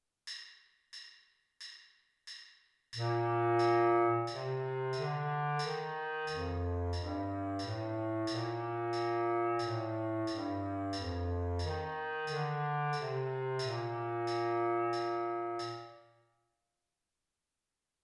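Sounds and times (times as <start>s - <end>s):
bass clarinet playing a C major scale: 3.0s - 16.0s.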